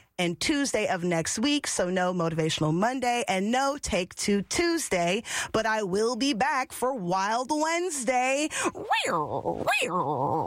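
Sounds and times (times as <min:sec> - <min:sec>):
speech: 0:00.2 - 0:10.4
person imitating a tiger growl: 0:08.7 - 0:10.4.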